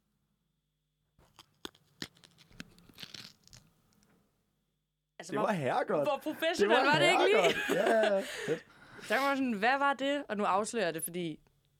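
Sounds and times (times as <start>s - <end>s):
brief tearing crackle of a pea pod: 1.2s - 3.7s
pea pod being split open: 1.3s - 3.7s
speech: 5.2s - 11.4s
laughter: 6.1s - 9.2s.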